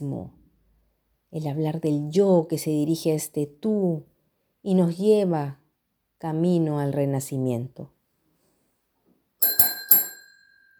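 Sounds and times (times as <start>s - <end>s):
speech: 0.0s - 0.4s, 1.3s - 5.6s, 6.2s - 8.0s
bright bell ringing: 9.4s - 10.7s.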